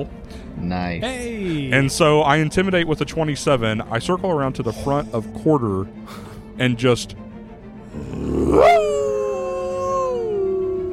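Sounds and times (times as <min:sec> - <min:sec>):
speech: 0:00.0 - 0:07.2, 0:08.0 - 0:08.9
voice imitating a deep growling howl: 0:07.9 - 0:10.9.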